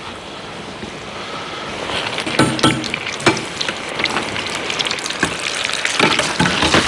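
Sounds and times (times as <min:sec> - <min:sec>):
bitterballen croquettes deep-frying in hot oil: 0:01.9 - 0:06.8.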